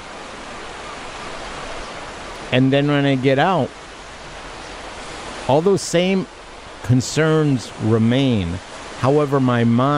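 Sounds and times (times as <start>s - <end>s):
river water flowing: 0.0s - 9.9s
speech: 2.5s - 3.8s, 5.5s - 9.9s.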